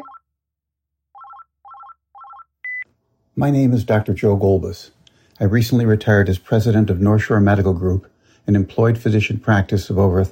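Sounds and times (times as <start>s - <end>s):
sustained higher telephone beep: 0.0s - 0.2s
telephone line ringing for a call: 0.0s - 0.2s, 1.2s - 2.8s
speech: 3.4s - 10.3s.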